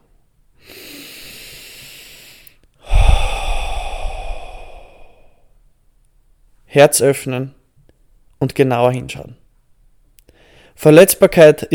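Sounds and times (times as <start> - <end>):
person taking a deep breath in and out: 0.6 - 5.5
speech: 6.8 - 7.6, 8.4 - 9.4, 10.8 - 11.7.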